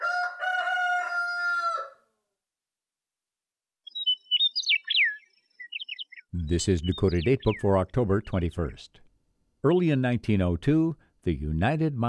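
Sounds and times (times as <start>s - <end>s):
rooster crowing: 0.0s - 2.2s
small bird twittering: 3.8s - 7.8s
speech: 6.4s - 9.0s, 9.6s - 12.0s.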